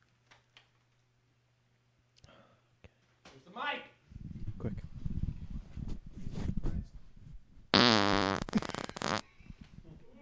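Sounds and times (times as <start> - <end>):
low rumbling and shuffling: 4.1 - 7.7, 9.4 - 10.2
loud drawn-out fart with buzzy wavering pitch: 7.7 - 9.3.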